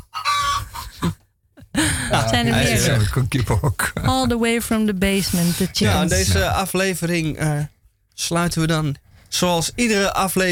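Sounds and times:
chickens clucking and squawking in a henhouse: 0.0s - 1.2s
laughter: 1.7s - 3.0s, 5.8s - 6.5s
speech: 2.3s - 10.5s.

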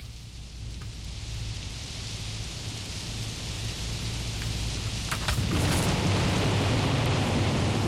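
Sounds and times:
steady dense rain hiss: 0.0s - 7.8s
deep rolling thunder: 3.4s - 7.8s.

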